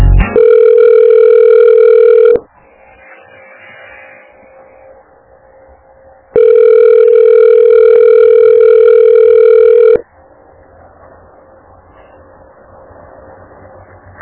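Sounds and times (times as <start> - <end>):
busy phone line tone: 0.1 - 13.9
telephone keypad beeps as a number is redialed: 0.3 - 2.4, 6.4 - 10.0.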